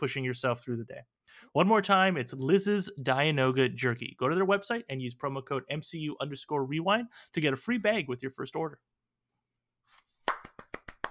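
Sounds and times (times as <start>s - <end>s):
speech: 0.0s - 9.0s
hand clapping: 10.2s - 11.1s.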